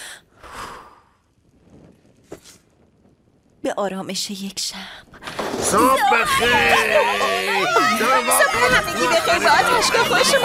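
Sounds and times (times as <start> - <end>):
deep breath inhale: 0.0 - 1.2
light rustle: 1.5 - 3.1
speech: 3.6 - 10.4
laughter: 5.7 - 10.4.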